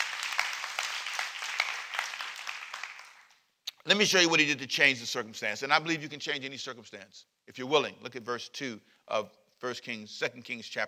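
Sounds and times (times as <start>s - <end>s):
audience clapping hands: 0.0s - 3.4s
speech: 3.9s - 10.8s.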